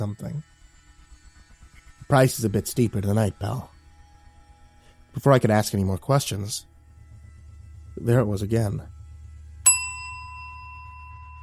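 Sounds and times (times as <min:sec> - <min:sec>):
speech: 0:00.0 - 0:00.5, 0:02.1 - 0:03.7, 0:05.2 - 0:06.7, 0:08.0 - 0:08.9
steady low hum: 0:00.0 - 0:11.4
bell tolling: 0:09.6 - 0:11.4.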